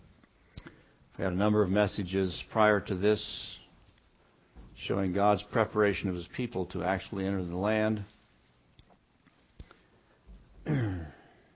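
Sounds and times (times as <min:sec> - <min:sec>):
speech: 0:01.2 - 0:03.6, 0:04.8 - 0:08.2
man clearing throat: 0:10.6 - 0:11.4.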